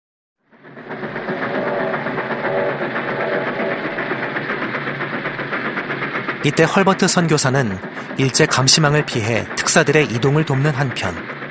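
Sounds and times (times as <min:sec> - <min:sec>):
1907 train rumbling along the rails from Berlin toward The Hague: 0:00.4 - 0:11.4
speech: 0:06.4 - 0:11.4.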